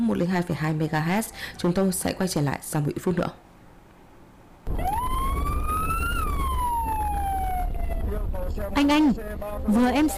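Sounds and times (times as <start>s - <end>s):
speech: 0.0s - 3.4s, 8.7s - 10.1s
low traffic rumble: 4.6s - 10.1s
ambulance siren wailing: 4.7s - 8.4s.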